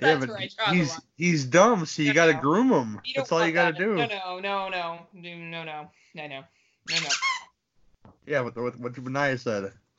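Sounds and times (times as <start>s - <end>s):
speech: 0.0s - 7.5s, 8.2s - 9.8s
squeaky sex toy squeezed: 6.9s - 7.5s.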